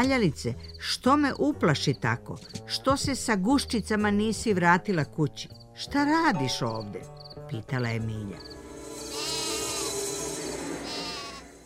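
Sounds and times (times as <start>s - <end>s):
speech: 0.0s - 8.6s
sheep bleating in a pen: 9.0s - 10.1s, 10.8s - 11.6s.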